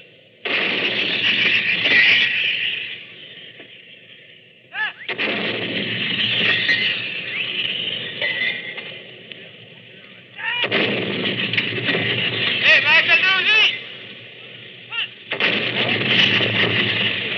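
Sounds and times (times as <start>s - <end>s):
75-millimeter field gun fired by British gun crew in First Battle of France: 0.4s - 2.5s, 5.0s - 7.5s, 10.6s - 14.3s, 15.2s - 17.3s.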